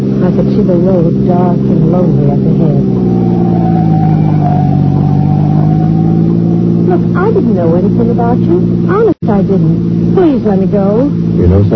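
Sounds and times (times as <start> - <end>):
speech: 0.0 - 3.1, 6.9 - 11.7
car engine accelerating on a road: 0.0 - 11.7.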